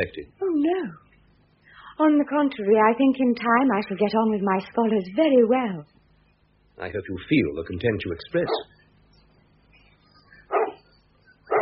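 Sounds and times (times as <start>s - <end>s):
speech: 0.0s - 1.0s, 2.0s - 5.9s, 6.8s - 8.8s
dog barking: 8.5s - 8.7s, 10.5s - 10.8s.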